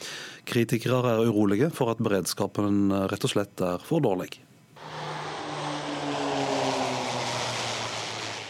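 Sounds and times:
speech: 0.5s - 4.5s
propeller plane engine drone landing on runway: 4.8s - 8.4s.

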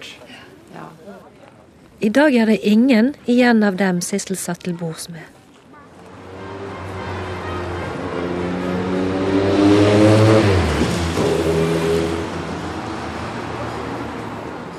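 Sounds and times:
speech: 2.0s - 5.4s
street traffic engines rumbling on Boulevard Saint-Germain in Paris: 5.6s - 14.7s
vehicle revving up and pulling away: 5.9s - 14.7s.

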